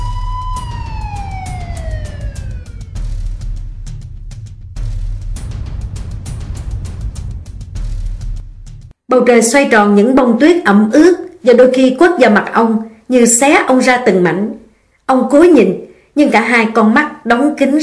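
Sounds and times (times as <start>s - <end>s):
police car siren wailing: 0.0s - 3.2s
speech: 9.1s - 17.8s.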